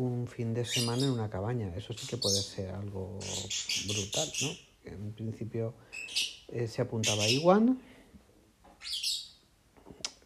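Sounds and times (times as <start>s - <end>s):
speech: 0.0s - 7.9s
bird chirping: 0.6s - 4.7s, 5.8s - 7.6s, 8.8s - 9.5s.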